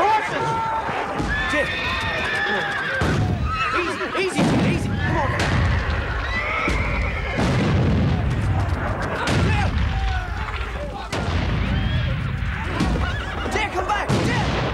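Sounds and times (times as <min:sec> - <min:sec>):
frightened horses neighing and whinnying: 0:00.2 - 0:13.9
heavy explosions booming: 0:03.0 - 0:03.6, 0:04.4 - 0:14.7
artillery fire: 0:04.4 - 0:14.7.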